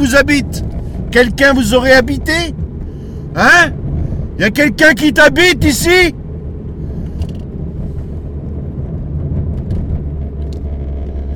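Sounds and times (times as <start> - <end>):
speech: 0.0 - 0.6, 1.2 - 2.6, 3.4 - 3.8, 4.4 - 6.2
car engine low rumble during a night drive: 0.0 - 11.3
car windscreen wiper clicking and scraping during a night drive: 7.0 - 11.3.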